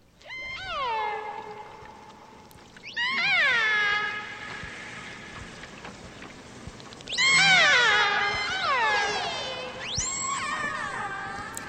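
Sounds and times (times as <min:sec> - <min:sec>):
low watery hiss: 0:00.0 - 0:11.6
transient killer whale pod whistles and squeals: 0:00.2 - 0:02.0, 0:02.8 - 0:05.0, 0:07.1 - 0:11.6.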